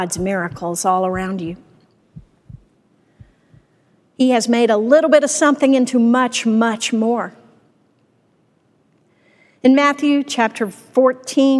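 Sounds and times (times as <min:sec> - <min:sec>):
speech: 0:00.0 - 0:01.7, 0:04.2 - 0:07.4, 0:09.6 - 0:11.5
heartbeat: 0:00.0 - 0:03.7
faint hum: 0:00.0 - 0:11.5.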